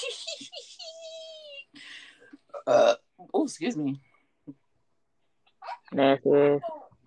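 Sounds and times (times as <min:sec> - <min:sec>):
baby boy giggling and cooing: 0:00.0 - 0:01.8
speech: 0:02.6 - 0:04.6, 0:05.9 - 0:06.8.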